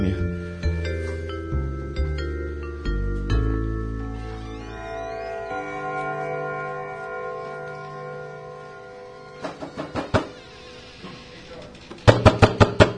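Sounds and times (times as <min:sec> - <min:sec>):
ringing chime-like tones: 0:00.4 - 0:10.9
knocking on a door: 0:12.0 - 0:12.9.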